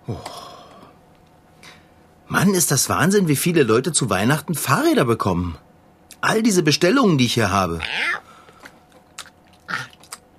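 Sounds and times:
speech: 0.1 - 0.4, 2.4 - 5.7, 6.3 - 8.2
tomcat crunchy chewing and biting contents of a St. Nicholas boot: 8.4 - 10.3.

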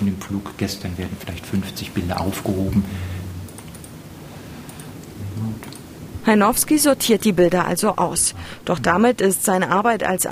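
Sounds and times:
low steady hum: 0.0 - 10.3
speech: 0.1 - 3.2, 6.3 - 10.3
computer mouse clicks through a folder of flight photos: 3.4 - 4.0, 4.7 - 5.9.

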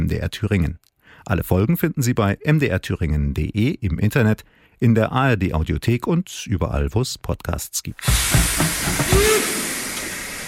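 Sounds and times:
speech: 0.1 - 9.5
steam hissing from a locomotive: 8.0 - 10.4.

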